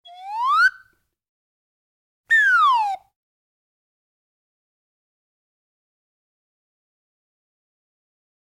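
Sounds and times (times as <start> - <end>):
cartoon sound effects: 0.0 - 0.8, 2.3 - 3.1.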